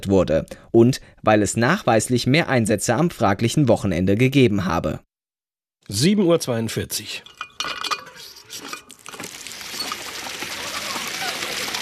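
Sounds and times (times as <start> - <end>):
speech: 0.0 - 5.1, 5.9 - 7.4
clinks and knocks: 7.2 - 9.2
pumped fountain water streaming and splashing: 8.9 - 11.8.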